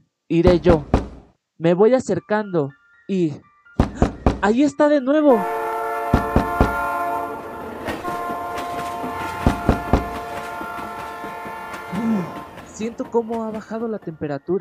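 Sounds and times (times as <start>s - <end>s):
speech: 0.3s - 1.0s, 1.6s - 3.5s, 4.4s - 5.6s, 12.8s - 14.5s
train horn: 5.3s - 13.3s
train wheels clacking: 6.1s - 6.9s, 7.8s - 14.5s.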